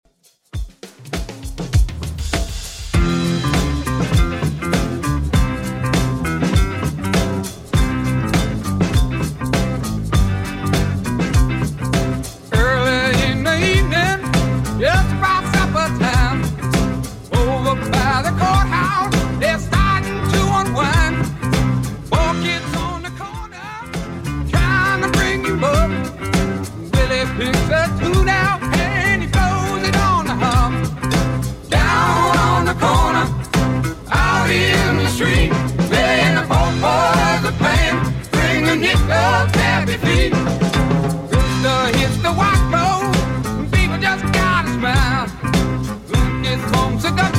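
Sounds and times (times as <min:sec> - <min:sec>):
60s Redrum drum machine beat at 100 bpm: 0:00.1 - 0:47.3.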